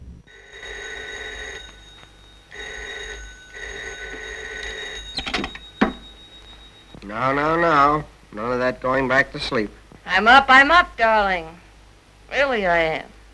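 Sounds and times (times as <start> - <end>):
telephone ringing: 0.3 - 8.1
speech: 7.1 - 11.6, 12.3 - 13.1.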